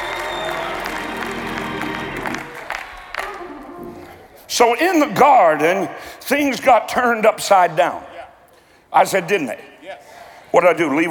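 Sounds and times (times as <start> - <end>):
audience clapping: 0.0 - 4.3
speech: 4.6 - 8.1, 8.9 - 11.0.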